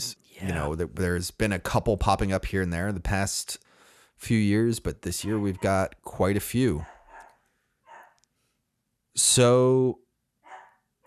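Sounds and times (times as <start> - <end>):
speech: 0.0 - 7.0, 9.2 - 10.0
dog barking: 5.1 - 5.9, 6.7 - 8.2, 10.4 - 11.0.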